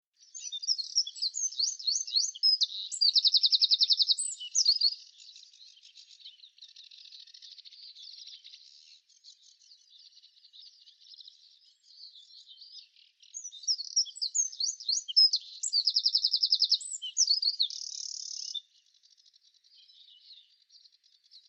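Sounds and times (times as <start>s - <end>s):
Eurasian wren singing: 0.2s - 18.9s.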